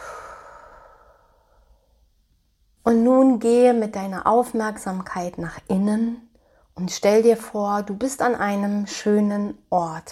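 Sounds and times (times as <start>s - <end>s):
deep exhale: 0.0s - 2.1s
speech: 2.8s - 10.1s.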